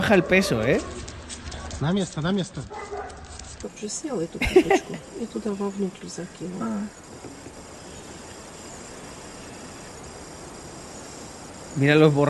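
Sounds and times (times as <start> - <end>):
dog barking and yipping in short high yelps: 0.0 - 1.8, 2.7 - 3.3
speech: 0.1 - 1.0, 1.8 - 2.8, 3.6 - 7.3, 11.8 - 12.2
people talking and laughing: 3.6 - 6.9.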